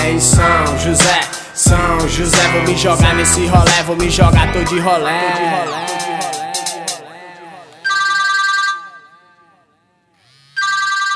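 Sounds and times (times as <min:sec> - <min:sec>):
speech: 0:00.0 - 0:06.3
music: 0:00.0 - 0:07.8
telephone ringing in bright electronic bursts: 0:05.4 - 0:09.8, 0:10.4 - 0:11.1.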